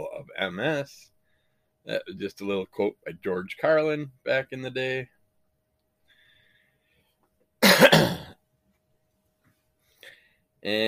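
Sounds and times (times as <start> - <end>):
speech: 0.0 - 1.1, 1.8 - 5.2, 10.6 - 10.8
short rough cough: 7.6 - 8.4
throat clearing from a dry throat: 7.6 - 8.4.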